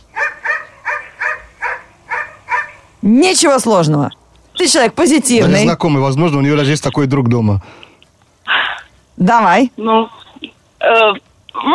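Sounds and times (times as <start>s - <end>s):
dog barking: 0.1s - 2.9s
speech: 3.0s - 7.9s, 9.2s - 10.2s, 10.8s - 11.7s.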